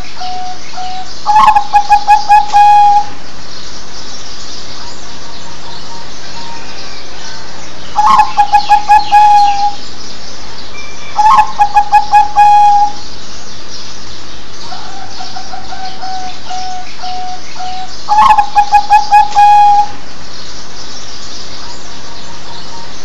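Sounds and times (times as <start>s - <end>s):
zebra dove cooing: 0.0s - 3.2s, 8.0s - 9.8s, 11.2s - 13.0s, 14.7s - 20.0s
background hiss: 0.0s - 23.0s.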